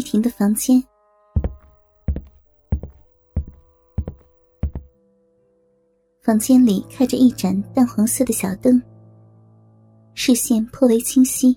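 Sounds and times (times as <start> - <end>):
speech: 0.1 - 0.9, 6.3 - 8.9, 10.2 - 11.5
knocking on the door of a girl's room: 1.4 - 4.9.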